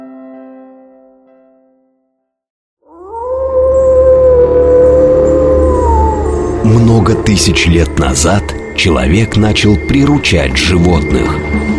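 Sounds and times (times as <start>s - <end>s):
dog howling: 2.8s - 8.8s
low rumbling background: 3.2s - 11.7s
fading tone: 4.2s - 11.7s
speech: 7.0s - 11.7s.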